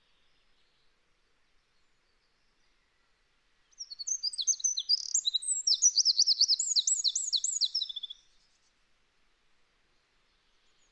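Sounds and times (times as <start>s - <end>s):
Eurasian wren Troglodytes troglodytes singing high twittering notes: 3.8s - 8.1s.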